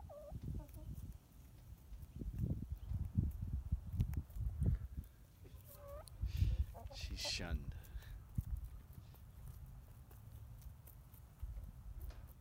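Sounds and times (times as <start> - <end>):
chickens squawking: 0.0 - 1.1, 5.5 - 8.0
chickens clucking: 0.0 - 12.3
speech: 7.4 - 7.7.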